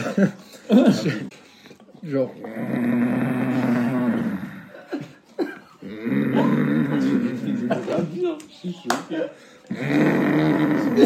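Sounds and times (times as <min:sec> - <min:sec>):
speech: 0:00.2 - 0:01.4, 0:02.0 - 0:03.6, 0:08.3 - 0:11.0
voice imitating a father's loud rasping snores: 0:02.4 - 0:04.8, 0:05.8 - 0:07.7, 0:09.7 - 0:11.0.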